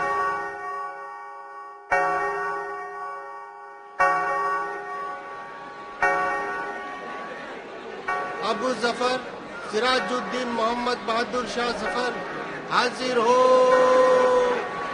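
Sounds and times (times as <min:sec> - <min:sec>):
clock chime striking the half hour: 0:00.0 - 0:14.9
speech: 0:08.6 - 0:14.1.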